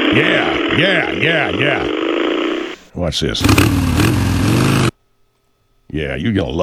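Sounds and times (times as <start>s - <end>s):
speech: 0.2s - 2.0s, 3.0s - 4.6s, 6.0s - 6.6s
motorcycle engine roaring: 3.4s - 4.9s.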